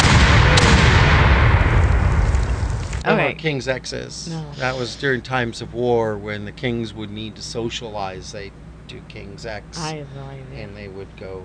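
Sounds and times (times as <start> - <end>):
cannon blast: 0.0 - 2.8
speech: 3.2 - 11.4.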